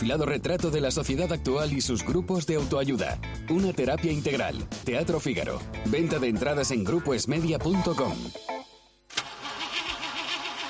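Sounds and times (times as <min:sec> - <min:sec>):
speech: 0:00.0 - 0:08.5
car engine cranking without catching: 0:09.1 - 0:10.6.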